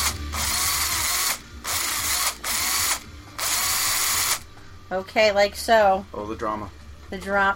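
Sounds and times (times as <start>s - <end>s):
power drill drilling through a baked potato: 0.0s - 4.4s
speech: 4.9s - 7.5s.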